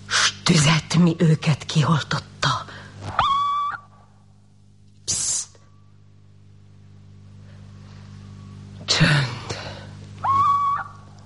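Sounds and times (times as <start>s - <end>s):
low hum: 0.0s - 11.2s
speech: 0.5s - 2.3s
little owl screeching at night: 3.1s - 4.0s, 10.2s - 11.1s.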